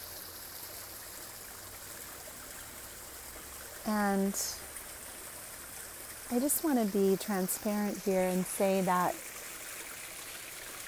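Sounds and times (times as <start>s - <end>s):
waterfall splashing into a pond in Northern California: 0.0s - 10.8s
speech: 3.9s - 4.7s, 6.3s - 9.3s.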